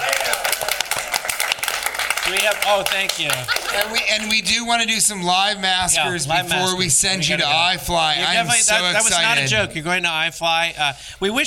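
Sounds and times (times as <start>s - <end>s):
sharp individual claps: 0.0s - 4.4s
crowd applauding: 0.0s - 4.6s
laughter: 2.3s - 4.7s, 5.8s - 9.8s
speech: 2.3s - 11.4s.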